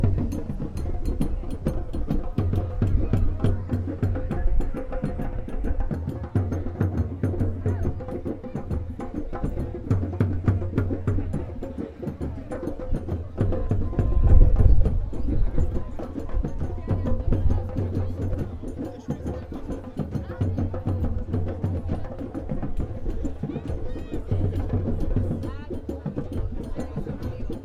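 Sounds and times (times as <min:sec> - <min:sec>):
drumming on Arambol beach at sunset in Goa: 0:00.0 - 0:27.6.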